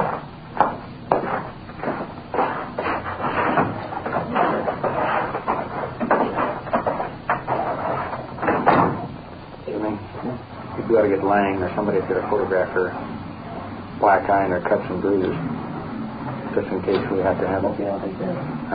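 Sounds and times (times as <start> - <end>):
wooden knocks and clunks: 0.0 - 11.0, 15.2 - 17.4
shuffling and rustling movement: 0.0 - 18.7
door being pulled shut: 3.2 - 9.2
speech: 11.0 - 13.1, 14.0 - 15.6, 16.5 - 18.7.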